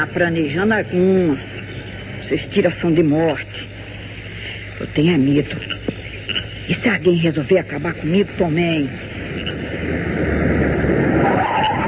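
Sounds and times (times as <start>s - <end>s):
speech: 0.0s - 1.6s, 2.3s - 3.7s, 4.8s - 5.9s, 6.8s - 9.1s
car tires skidding to a stop: 9.6s - 11.8s.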